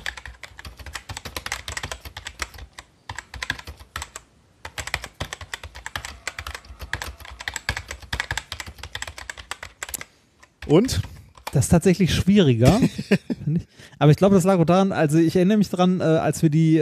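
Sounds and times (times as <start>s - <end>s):
computer keyboard keys clattering while typing: 0.0s - 11.8s
speech: 10.7s - 11.0s, 11.6s - 16.8s
laughter: 12.6s - 13.6s.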